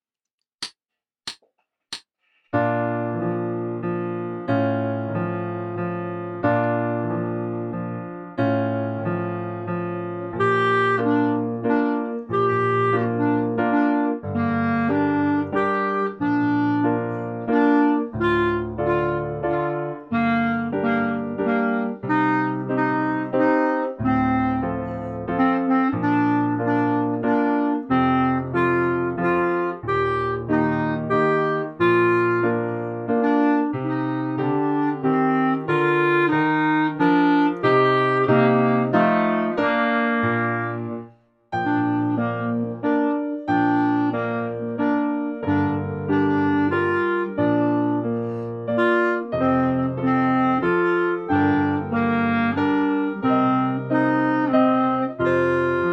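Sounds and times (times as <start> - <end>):
slowed clarinet dance melody: 2.6 - 55.9.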